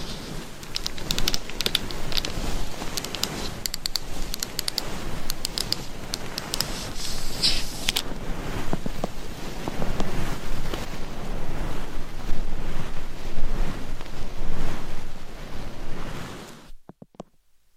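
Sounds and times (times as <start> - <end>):
short scrapes: 0.0 - 9.2
dense scratching and brushing on a binaural microphone: 0.0 - 16.8.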